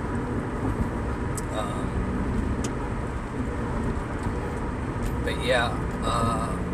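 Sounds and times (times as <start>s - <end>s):
road and engine noise inside a moving car: 0.0s - 6.7s
speech: 5.3s - 6.6s.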